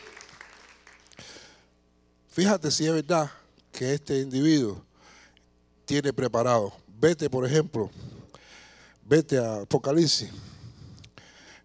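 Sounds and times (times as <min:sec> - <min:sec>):
crowd applauding: 0:00.0 - 0:01.4
speech: 0:02.4 - 0:04.9, 0:05.9 - 0:08.1, 0:09.1 - 0:10.5.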